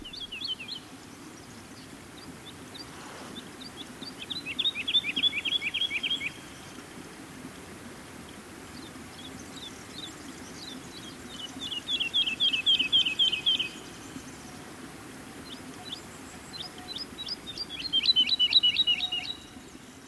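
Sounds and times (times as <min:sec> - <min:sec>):
woodlark singing outdoors: 0:00.0 - 0:01.0, 0:03.6 - 0:06.6, 0:09.1 - 0:14.6, 0:15.4 - 0:20.0
faint insects: 0:00.0 - 0:20.0.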